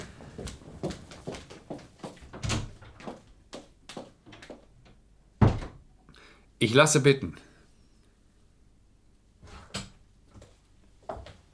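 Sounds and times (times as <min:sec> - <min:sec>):
door opening and closing: 0:02.3 - 0:03.0, 0:04.3 - 0:05.9
speech: 0:06.6 - 0:07.5.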